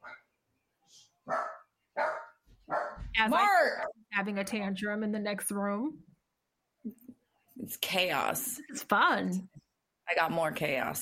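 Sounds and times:
dogs barking frantically: 1.3 - 3.1
speech: 3.2 - 6.1, 7.7 - 9.5, 10.2 - 10.9.

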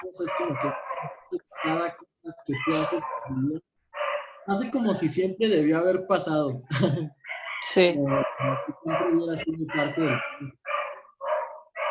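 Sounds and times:
human voices: 0.0 - 3.6, 8.0 - 10.6
speech: 0.0 - 3.7, 4.5 - 10.6
dogs barking: 0.1 - 4.7, 7.2 - 11.8
laughter: 6.6 - 7.2.

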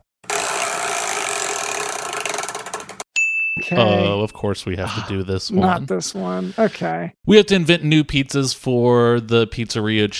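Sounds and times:
large prize wheel spinning with ratcheting clicks: 0.2 - 3.0
speech: 3.6 - 10.1.

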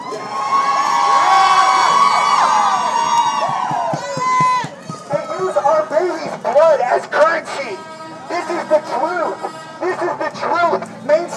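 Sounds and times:
crowd of protesters in a circle shouting and cheering: 0.0 - 11.3
sharp rhythmic claps or thumps: 3.3 - 6.5.

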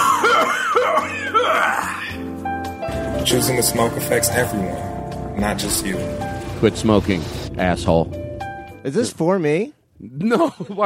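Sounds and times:
girl with emphysema coughing wheezily: 0.0 - 2.1
steady music: 0.0 - 9.9
speech: 3.3 - 8.2, 8.8 - 10.8.

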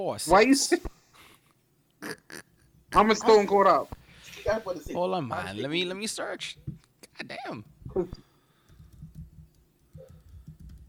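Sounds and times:
speech: 0.0 - 0.9, 3.0 - 8.2
rapid keyboard typing: 8.6 - 10.8.

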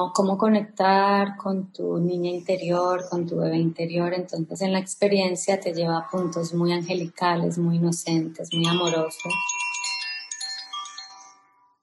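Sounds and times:
speech: 0.0 - 9.7
gentle chime instrument being played: 8.5 - 11.8.

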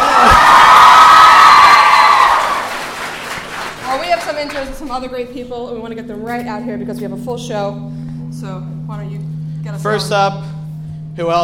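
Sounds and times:
large audience cheering and whooping: 0.0 - 3.7
applause: 0.0 - 4.9
speech: 4.9 - 9.1, 9.8 - 10.5, 11.2 - 11.4.

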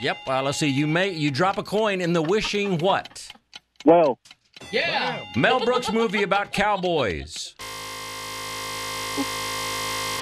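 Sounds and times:
speech: 0.0 - 7.7, 9.2 - 9.4
laughter: 2.0 - 3.3, 5.4 - 7.6
quiz game buzzer with long harsh buzzing tone: 7.6 - 10.2.

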